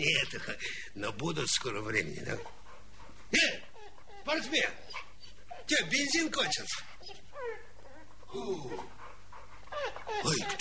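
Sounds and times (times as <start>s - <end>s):
speech: 0.0s - 2.6s, 3.3s - 5.1s, 5.7s - 7.6s, 8.3s - 9.0s, 9.9s - 10.6s
dog panting: 1.9s - 10.6s
dog whimpering: 3.6s - 10.6s.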